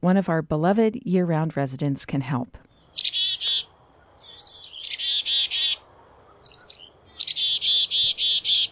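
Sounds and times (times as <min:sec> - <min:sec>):
speech: 0:00.0 - 0:03.2
black-capped chickadee chick-a-dee call: 0:02.9 - 0:05.8, 0:06.4 - 0:08.7.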